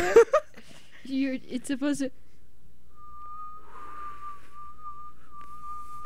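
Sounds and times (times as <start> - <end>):
speech: 1.1 - 2.3
breathy attempted whistle through lips: 2.9 - 6.0.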